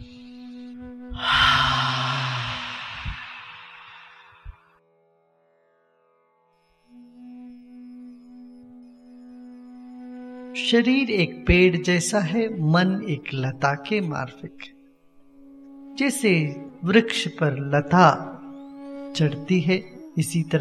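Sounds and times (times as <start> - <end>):
steady low tone: 1.2 - 4.7
deep breath during a guided breathing exercise: 1.2 - 4.8
speech: 10.6 - 14.7, 16.0 - 18.3, 19.2 - 20.5.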